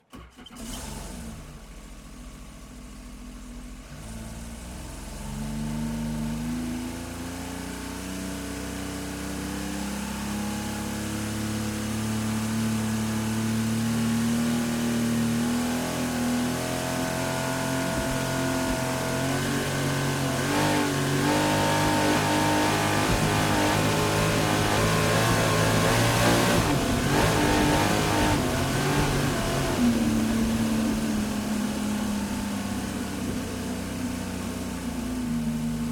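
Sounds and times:
Sea-Doo jet ski engine starting up to full speed and shutting off: 0.0s - 35.9s.

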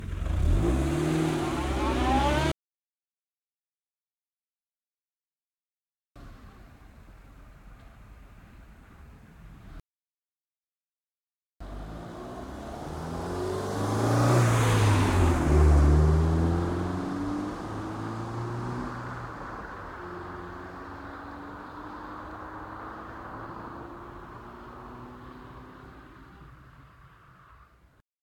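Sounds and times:
Renault Kangoo 1.6 16v reversing and driving slowly away: 0.0s - 2.5s, 11.6s - 27.3s.

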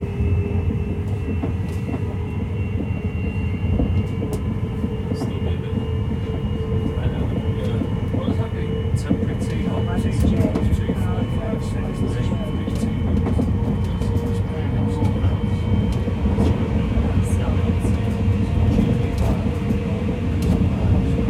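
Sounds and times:
UK train interior ambience: 0.0s - 21.2s.

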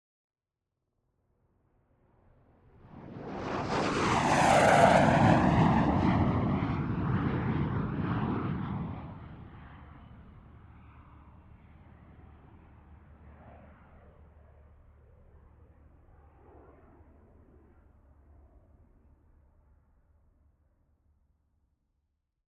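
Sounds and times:
MiG-15 UTI jet aircraft flyby: 2.6s - 14.8s.

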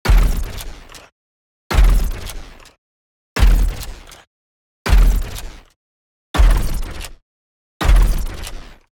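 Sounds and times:
heavy mechanical robotic creature footsteps: 0.0s - 1.1s, 1.7s - 2.8s, 3.4s - 4.3s, 4.9s - 5.8s, 6.4s - 7.2s, 7.8s - 8.9s.

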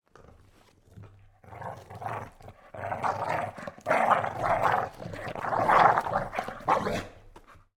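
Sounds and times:
dog snarling indoors: 1.4s - 7.3s.

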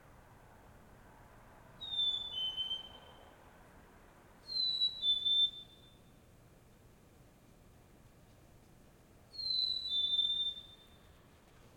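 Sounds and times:
bird call in a suburb: 1.8s - 3.2s, 4.5s - 6.0s, 9.4s - 10.9s.

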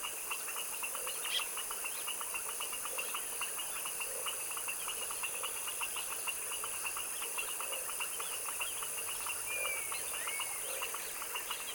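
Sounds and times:
frog chorus in a tropical wetland swamp at dusk: 0.0s - 11.7s.

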